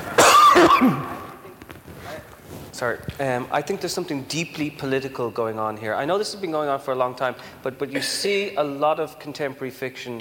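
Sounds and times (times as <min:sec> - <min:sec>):
person coughing during a conversation: 0:00.2 - 0:01.3
speech: 0:00.8 - 0:01.0, 0:02.8 - 0:10.1.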